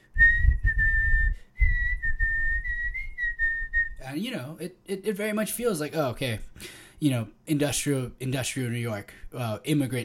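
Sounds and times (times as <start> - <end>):
low rumbling layer: 0.2 - 4.0
penny whistle playing an Irish jig: 0.2 - 4.0
speech: 4.0 - 10.0.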